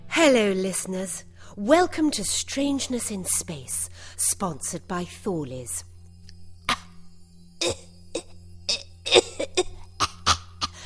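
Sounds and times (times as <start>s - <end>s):
steady low electrical hum: 0.0s - 10.8s
speech: 0.2s - 5.9s, 7.6s - 7.8s
harsh sharp coughs in a coughing fit: 7.6s - 10.8s.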